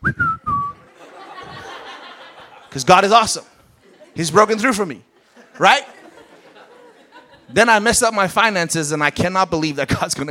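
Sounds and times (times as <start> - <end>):
person whistling a short bright phrase: 0.0 - 0.8
laughter: 0.8 - 3.1, 3.8 - 7.8
speech: 2.8 - 3.5, 4.2 - 5.9, 7.5 - 10.2.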